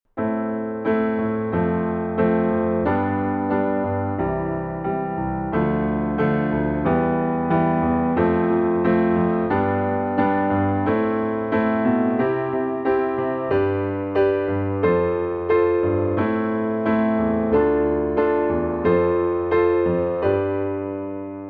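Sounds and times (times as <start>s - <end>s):
diatonic piano: 0.1s - 21.4s.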